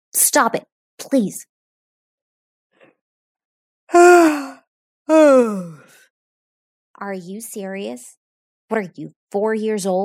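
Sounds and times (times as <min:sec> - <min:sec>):
speech: 0:00.2 - 0:01.5, 0:03.9 - 0:04.4, 0:07.0 - 0:10.0
loud yawn: 0:03.9 - 0:05.9.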